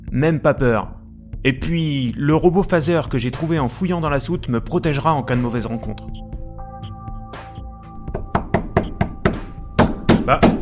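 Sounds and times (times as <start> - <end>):
speech: 0.2 - 6.2
thuds of a locked door being pushed: 8.1 - 10.6.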